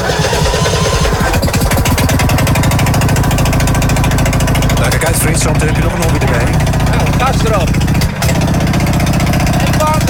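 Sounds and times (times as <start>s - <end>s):
small racing lawn mower engine idling and warming up: 0.0s - 10.0s
people talking: 4.7s - 7.8s, 9.5s - 10.0s.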